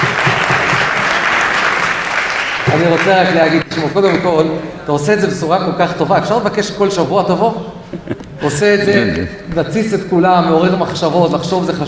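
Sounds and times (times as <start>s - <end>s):
audience applause: 0.0s - 3.6s
speech: 2.8s - 11.8s.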